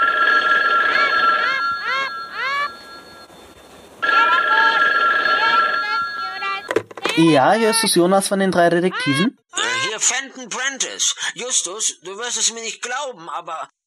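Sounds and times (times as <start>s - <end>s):
telephone bell ringing: 0.0s - 7.5s
speech: 7.2s - 9.4s, 10.0s - 13.8s.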